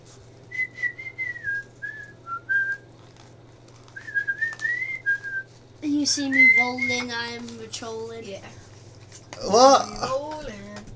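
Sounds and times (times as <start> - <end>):
person whistling a song melody: 0.5 - 2.8, 4.0 - 5.5, 6.3 - 6.9
speech: 6.0 - 8.7, 9.4 - 10.2.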